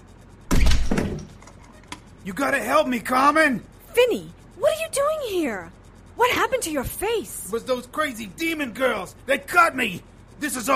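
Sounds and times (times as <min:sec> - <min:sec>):
inner office door slamming open: 0:00.5 - 0:01.3
speech: 0:02.2 - 0:10.7.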